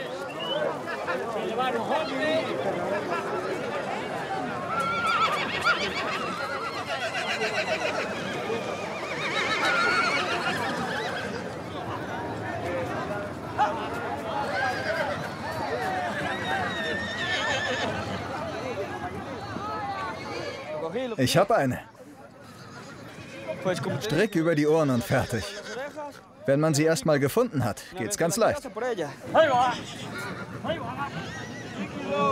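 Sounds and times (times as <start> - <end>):
voices in background: 0.0 - 32.3
speech: 1.6 - 3.6, 7.0 - 8.8, 20.9 - 21.9, 23.6 - 25.6, 26.4 - 31.3
mares neighing and whinnying: 4.7 - 11.5, 14.5 - 15.3, 16.1 - 18.1, 22.5 - 26.0, 29.4 - 32.3.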